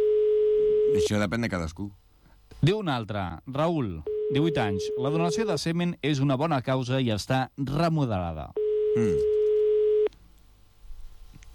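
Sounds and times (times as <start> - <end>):
speech: 0.9 - 2.0, 2.6 - 9.4
telephone busy signal on an outgoing call: 4.1 - 5.6, 8.6 - 10.1.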